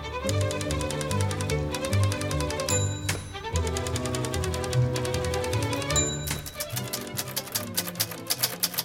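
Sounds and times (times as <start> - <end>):
German Olympia manual typewriter keys clacking in a typewriter shop in London: 0.2 - 8.8
bright typewriter bell ding: 2.5 - 8.8.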